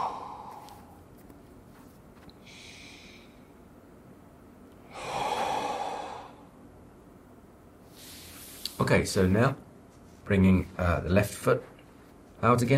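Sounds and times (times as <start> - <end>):
deep breathing during a seated yoga forward stretch: 0.0 - 1.0, 2.3 - 3.6, 4.8 - 6.6
speech: 8.9 - 9.6, 10.3 - 11.7, 12.4 - 12.7.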